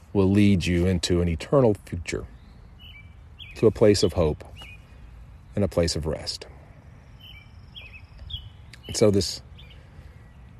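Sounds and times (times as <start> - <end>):
speech: 0.2 - 2.4, 3.6 - 4.6, 5.6 - 6.5, 8.9 - 9.5
short thin bird chirps outdoors on a misty afternoon: 2.2 - 10.5.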